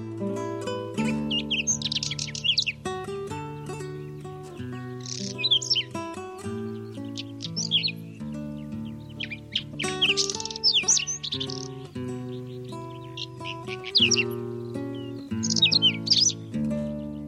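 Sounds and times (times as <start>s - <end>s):
sustained instrumental music: 0.0s - 17.2s
whinchat song with short scratchy warbled phrases and high whistled notes: 0.9s - 17.2s.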